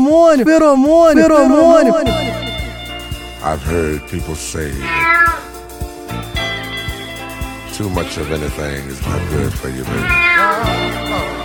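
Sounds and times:
speech: 0:00.1 - 0:02.5, 0:03.4 - 0:05.5, 0:07.8 - 0:11.4
steady thumping music beat: 0:00.5 - 0:11.4
cat meowing: 0:04.8 - 0:05.6, 0:09.9 - 0:10.9.

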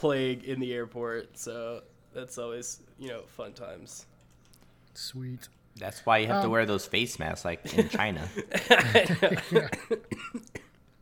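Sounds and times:
speech: 0:00.0 - 0:04.1, 0:05.0 - 0:10.6
laughter: 0:07.7 - 0:10.1
person coughing: 0:08.7 - 0:10.8.

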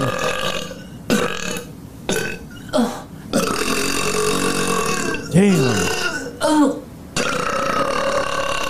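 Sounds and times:
person burping: 0:00.0 - 0:08.6
speech: 0:05.4 - 0:05.8.

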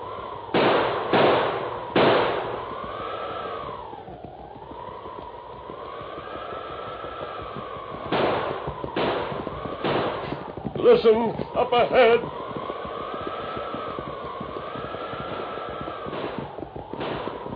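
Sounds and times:
steady wavering howl of a storm: 0:00.0 - 0:17.5
gunshots from a heavy six-gun revolver fired by a man lost in a storm: 0:00.4 - 0:04.2, 0:08.0 - 0:17.5
speech: 0:10.9 - 0:12.4.

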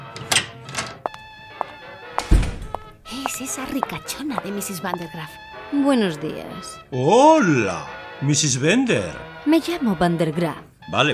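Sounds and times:
dull knocks on a door: 0:02.2 - 0:05.2
speech: 0:03.2 - 0:11.1.

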